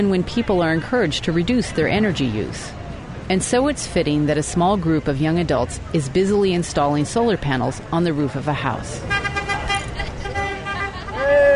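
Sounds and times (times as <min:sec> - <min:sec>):
speech: 0:00.0 - 0:09.3
steady road noise: 0:00.0 - 0:11.5
car horns honking from traffic driving past a house in California: 0:09.0 - 0:11.5.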